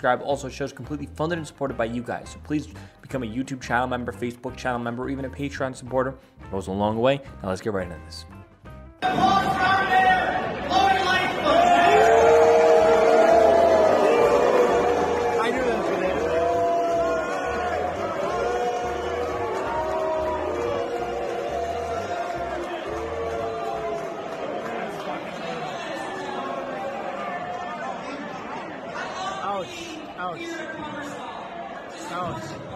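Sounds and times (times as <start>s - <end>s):
speech: 0.0s - 8.4s, 9.0s - 9.8s
large crowd booing at a Chicago fundraiser: 9.0s - 32.6s.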